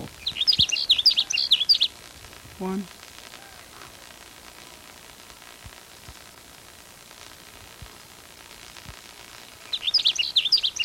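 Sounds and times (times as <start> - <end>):
sage sparrow singing: 0.2 - 2.0, 9.4 - 10.8
speech: 2.6 - 3.0.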